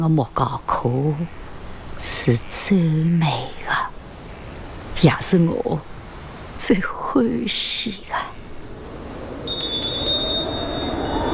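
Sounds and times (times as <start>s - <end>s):
speech: 0.0s - 1.4s, 2.0s - 3.7s, 5.0s - 5.9s, 6.6s - 8.2s
wind chimes ringing: 9.4s - 11.3s.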